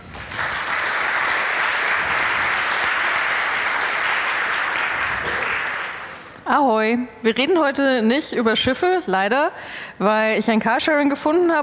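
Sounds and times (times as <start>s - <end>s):
audience at a talk applauding: 0.0s - 6.4s
speech: 6.5s - 11.6s.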